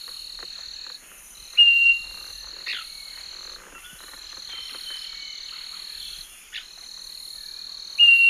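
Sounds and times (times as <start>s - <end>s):
buzzing insect chorus: 0.0s - 8.2s
Scaly-breasted Wren Microcerculus marginatus whistling song in South American eastern lowlands: 1.6s - 3.1s, 8.0s - 8.2s.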